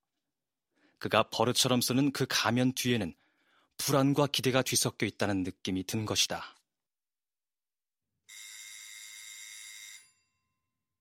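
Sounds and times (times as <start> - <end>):
speech: 1.0 - 3.2, 3.8 - 6.6
doorbell ringing with a bright buzz: 8.3 - 10.8.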